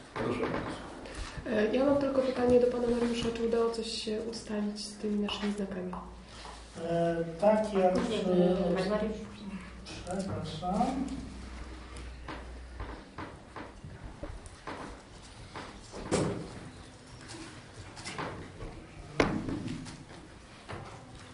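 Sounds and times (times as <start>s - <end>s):
steady murmur of room noise: 0.0s - 21.3s
speech: 1.4s - 6.2s, 6.8s - 9.3s, 10.1s - 11.3s
door swinging shut with a sharp thud: 16.0s - 16.6s.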